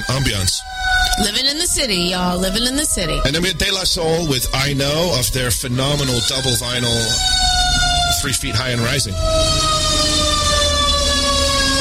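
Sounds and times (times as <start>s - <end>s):
speech: 0.0s - 7.4s, 8.2s - 9.7s
fire truck low engine rumble: 0.0s - 11.7s
fire truck siren wailing: 0.0s - 11.7s.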